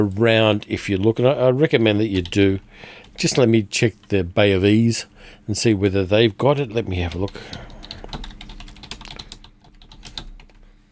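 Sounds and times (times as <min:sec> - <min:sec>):
speech: 0:00.0 - 0:07.7
typing on a computer keyboard: 0:07.1 - 0:10.6.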